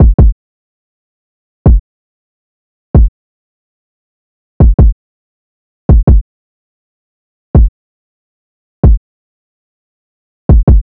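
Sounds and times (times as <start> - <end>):
trap drum loop with kick: 0.0 - 0.3, 4.6 - 4.9, 5.9 - 6.2, 10.5 - 10.8.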